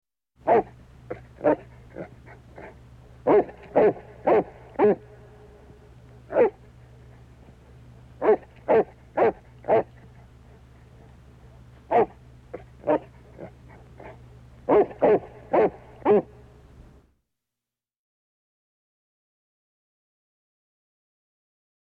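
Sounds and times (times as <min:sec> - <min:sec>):
St. Bernard dog vocalizing: 0:00.4 - 0:05.7, 0:06.3 - 0:06.7, 0:08.2 - 0:11.2, 0:11.8 - 0:16.4.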